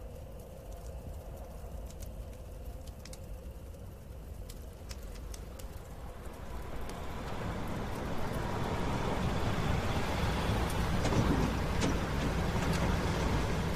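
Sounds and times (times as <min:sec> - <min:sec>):
truck engine rumbling as it pulls up: 0:05.7 - 0:13.7.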